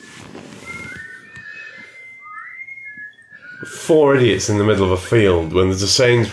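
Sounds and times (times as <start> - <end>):
person whistling a wavering, sliding tune: 0.5 - 5.4
speech: 3.6 - 6.3.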